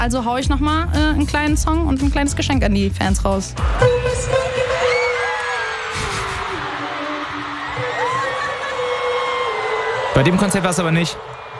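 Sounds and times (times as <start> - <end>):
speech: 0.0 - 4.6, 10.2 - 11.4
large crowd of concert fans screaming and shrieking: 3.6 - 11.5.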